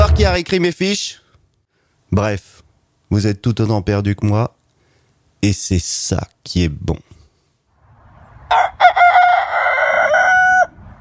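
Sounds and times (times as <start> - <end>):
faint noise: 0.0 - 10.7
speech: 0.2 - 1.2, 2.1 - 4.6, 5.4 - 7.1
rooster crowing: 8.4 - 10.8.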